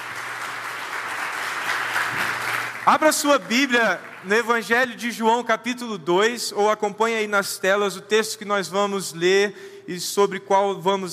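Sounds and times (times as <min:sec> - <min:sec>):
crowd applauding in a church during a Sunday morning service: 0:00.0 - 0:05.0
speech: 0:02.9 - 0:11.1.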